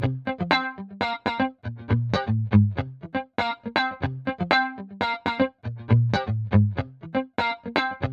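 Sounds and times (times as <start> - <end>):
guitar: 0.0 - 8.1.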